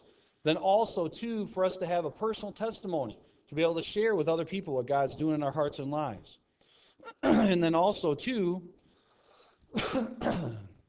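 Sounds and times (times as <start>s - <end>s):
speech: 0.4s - 6.4s, 7.0s - 8.8s, 9.7s - 10.7s
person coughing with a frog in their throat: 7.0s - 7.6s, 9.7s - 10.8s
throat clearing: 7.0s - 7.6s, 9.7s - 10.8s.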